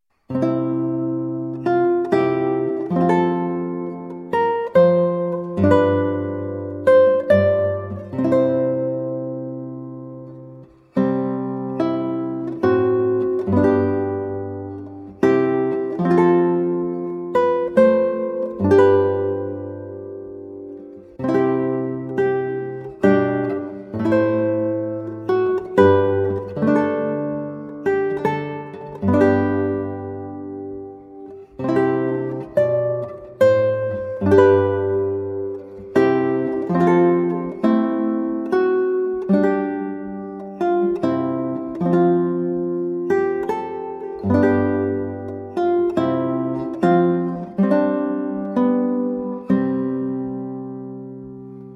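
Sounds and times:
8 string guitar playing: 0.0s - 51.7s.

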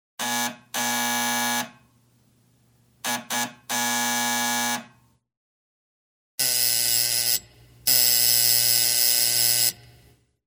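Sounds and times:
door buzzer: 0.2s - 1.8s, 3.0s - 5.0s, 6.4s - 9.9s.

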